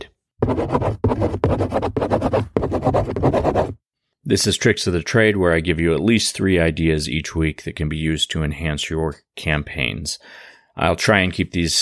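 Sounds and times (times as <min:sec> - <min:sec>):
pencil scratching on paper: 0:00.4 - 0:03.8
speech: 0:00.6 - 0:01.4, 0:04.3 - 0:11.8.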